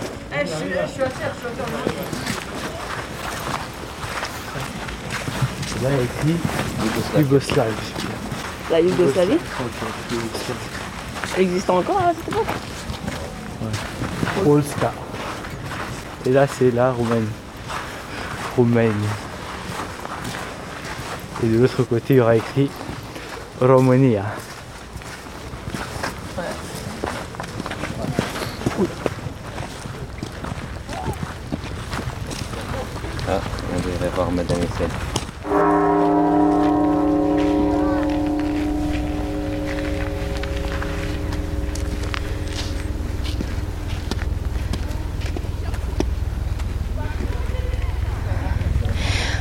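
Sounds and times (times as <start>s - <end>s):
busy noise: 0.0s - 49.3s
footsteps: 0.0s - 49.3s
speech: 0.4s - 2.3s, 5.8s - 8.1s, 8.7s - 10.8s, 11.4s - 12.7s, 14.4s - 15.0s, 16.2s - 17.4s, 18.6s - 19.3s, 21.4s - 22.9s, 23.6s - 24.5s, 34.2s - 35.1s
single bright bell ringing: 35.4s - 49.3s.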